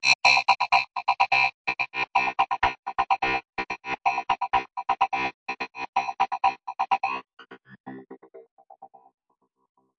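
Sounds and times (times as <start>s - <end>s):
space banjo synth and electronic loop: 0.0s - 8.4s.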